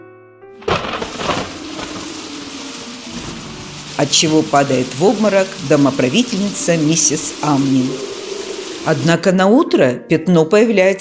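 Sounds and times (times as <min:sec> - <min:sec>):
loud thunderclap: 0:00.6 - 0:09.0
steady hiss of heavy rain: 0:00.6 - 0:09.3
speech: 0:04.0 - 0:08.1, 0:08.8 - 0:10.9.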